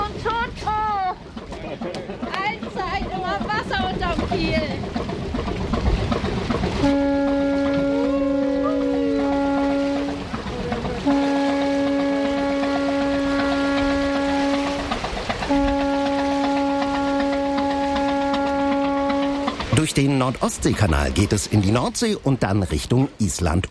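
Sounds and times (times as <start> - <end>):
ship engine running as the ship pulls away from the quay: 0.0 - 23.7
deep ship horn blasts: 6.7 - 19.8
speech: 20.2 - 23.7.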